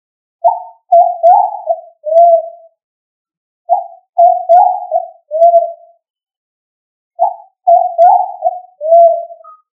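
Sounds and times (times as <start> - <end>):
pigeon cooing with soft hooting notes: 0.4 - 2.6, 3.7 - 5.8, 7.2 - 9.6.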